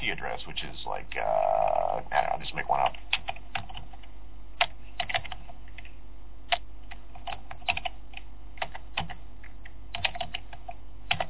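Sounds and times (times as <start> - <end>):
low steady hum: 0.0 - 11.2
typing on a computer keyboard: 2.9 - 5.9, 6.5 - 11.2.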